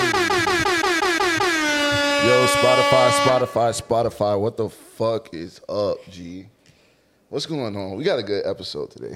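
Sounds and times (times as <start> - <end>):
loud blaring air horn blasts: 0.0 - 4.0
speech: 2.5 - 6.6, 7.3 - 9.1.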